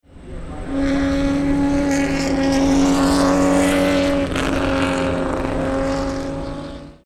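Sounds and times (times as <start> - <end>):
Ferrari 250 TdF: 0.0 - 7.0.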